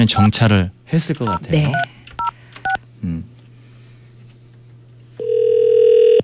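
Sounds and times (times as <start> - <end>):
speech: 0.0 - 2.0, 3.0 - 3.3
ringback tone through a phone line: 5.2 - 6.2.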